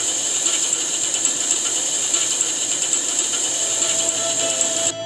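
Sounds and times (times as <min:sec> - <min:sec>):
spinning machine twisting dyed wool into yarn: 0:00.0 - 0:04.9.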